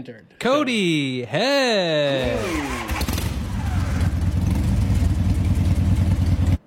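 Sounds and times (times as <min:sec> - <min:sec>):
speech: 0:00.0 - 0:03.0
motorcycle engine idling with a brief rev: 0:02.8 - 0:06.6.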